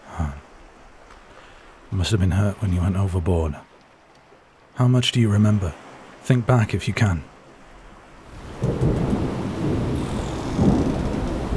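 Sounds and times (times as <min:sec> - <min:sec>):
steady rain at sea on the deck of a ship: 0:00.0 - 0:11.5
speech: 0:01.9 - 0:03.7, 0:04.8 - 0:07.3
deep rolling thunder at sea: 0:08.4 - 0:11.5.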